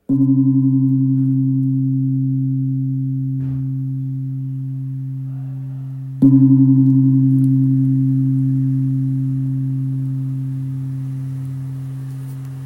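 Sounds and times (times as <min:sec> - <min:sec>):
Burmese gong sounding Do: 0:00.0 - 0:12.6.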